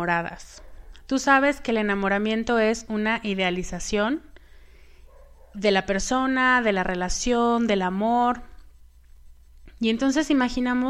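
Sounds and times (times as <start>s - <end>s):
speech: 0.0s - 4.3s, 5.6s - 8.5s, 9.8s - 10.8s
low steady hum: 0.0s - 10.8s
faint dogs barking: 0.4s - 1.1s, 5.0s - 5.8s.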